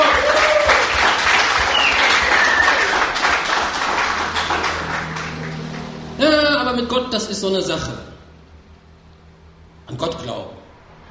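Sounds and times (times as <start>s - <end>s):
crowd applauding at a biker church service: 0.0s - 6.2s
speech: 7.2s - 8.1s, 9.9s - 10.6s.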